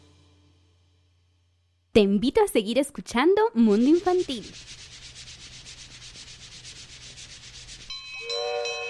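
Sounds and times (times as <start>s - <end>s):
speech: 2.0s - 4.9s
rough rubbing noise of an approaching train: 3.6s - 8.3s
approaching train horn or whistle: 8.2s - 8.8s.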